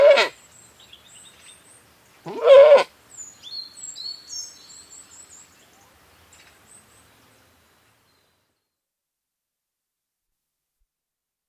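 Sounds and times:
British Saanen goat bleating outdoors: 0.0 - 0.4, 2.2 - 2.9
high whistled birdsong phrases: 0.4 - 1.9, 3.1 - 8.8.

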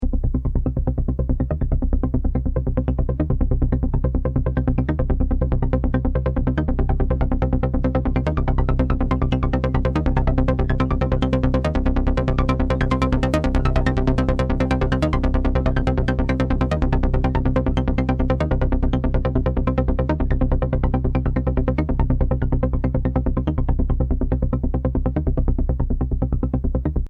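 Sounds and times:
techno trance loop in C at 142 BPM: 0.1 - 26.9.

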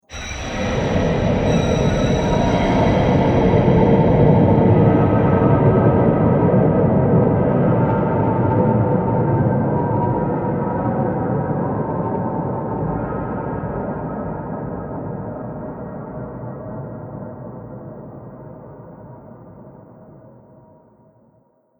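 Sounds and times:
scary ambient soundscape: 0.0 - 16.6.

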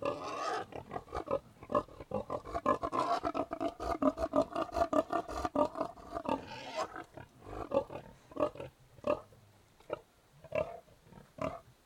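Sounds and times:
Tamworth pigs grunting in a yard outdoors: 0.0 - 9.3.

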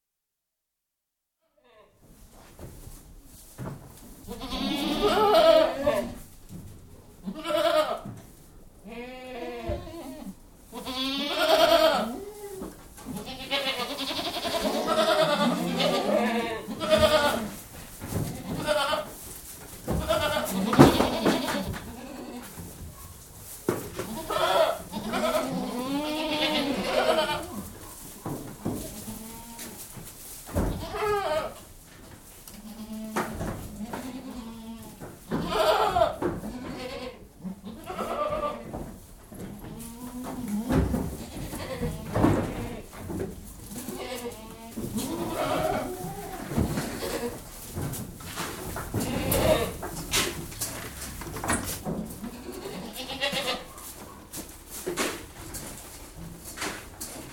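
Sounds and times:
goats moving indoors while being fed: 2.0 - 8.8, 9.7 - 57.3
goats bleating indoors while being fed: 4.3 - 6.2, 7.2 - 8.2, 8.8 - 17.6, 18.2 - 19.2, 19.9 - 22.6, 24.0 - 27.7, 28.9 - 29.8, 30.6 - 31.7, 32.5 - 38.7, 39.5 - 43.0, 43.7 - 47.5, 48.8 - 50.0, 52.0 - 53.8.

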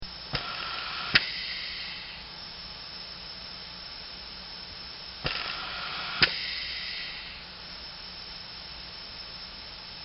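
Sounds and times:
anesthesia ventilator: 0.3 - 2.3, 5.2 - 7.5.

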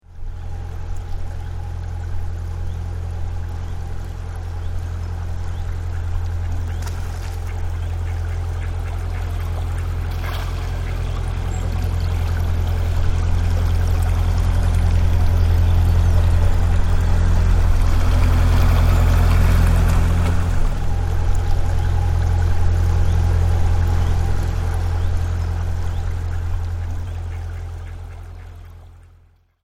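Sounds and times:
chugging canal narrow boat passing on tranquil water: 0.0 - 29.5
water sounds on a canal: 0.0 - 29.5
duck splashing: 5.8 - 29.2.

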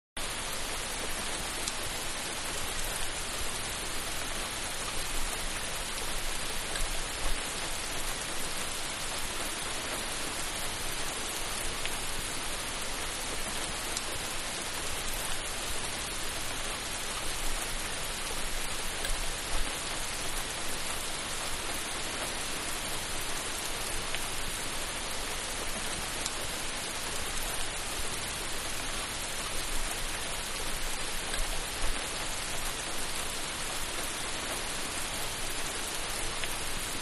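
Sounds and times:
heavy rain: 0.2 - 36.9.

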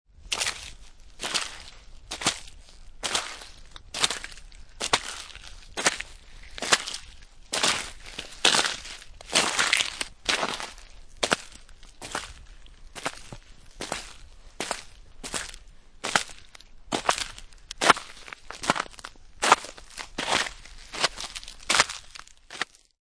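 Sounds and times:
footsteps in snow, slush and wet ice: 0.2 - 22.9.

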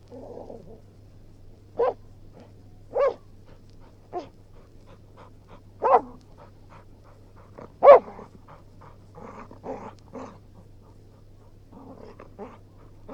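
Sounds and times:
springer spaniel growling: 0.1 - 0.8, 5.2 - 13.1
springer spaniel barking: 1.8 - 2.0, 2.9 - 3.3, 5.8 - 6.1, 7.8 - 8.2
springer spaniel panting: 3.4 - 13.1.

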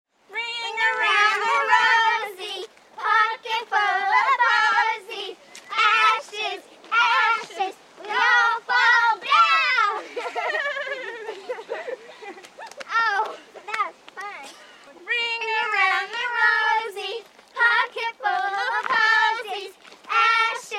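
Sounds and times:
American children singing a nursery rhyme: 0.4 - 10.0, 15.1 - 20.7
laughter: 9.8 - 13.7.

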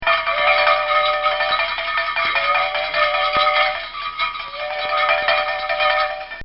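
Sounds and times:
bells: 0.0 - 6.4.

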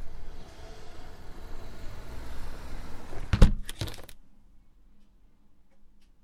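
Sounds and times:
double glazed window closing: 0.2 - 4.1.

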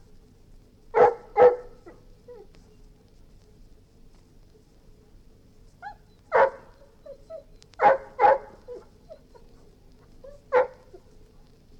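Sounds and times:
golden retriever barking: 1.0 - 2.0, 5.8 - 6.9, 7.8 - 9.5, 10.3 - 11.1
golden retriever whining softly: 5.8 - 11.2.

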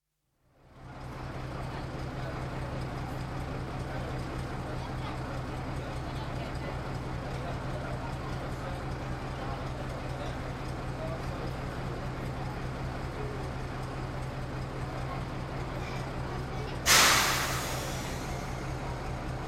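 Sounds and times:
railway locomotive idling at a train station: 0.6 - 19.4
children chatting: 1.0 - 19.4
train hissing: 16.8 - 19.3.

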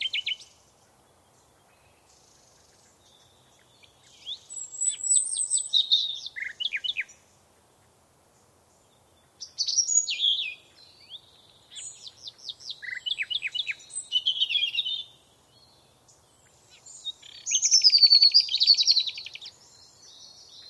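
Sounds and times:
bird twittering on a summer morning: 2.6 - 7.2, 9.4 - 15.2, 16.4 - 20.6.

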